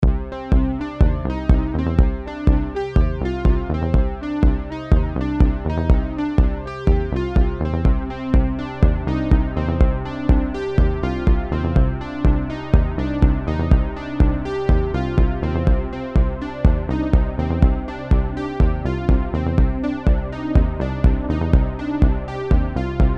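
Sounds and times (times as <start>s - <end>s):
Roland Juno-106 and Roland Juno-60 synthesizers: 0.0s - 23.1s.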